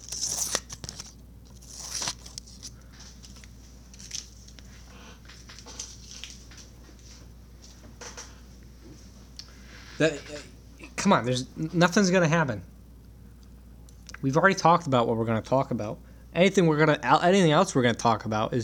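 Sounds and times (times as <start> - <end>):
scissors snipping: 0.0 - 2.6
speech: 10.0 - 12.7, 14.2 - 18.6.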